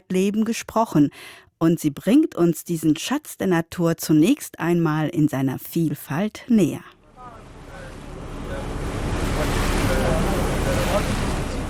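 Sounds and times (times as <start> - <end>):
speech: 0.1 - 7.0
boat engine on open water: 7.0 - 11.6
waves on open water: 7.0 - 11.6
wind over open water: 7.0 - 11.6.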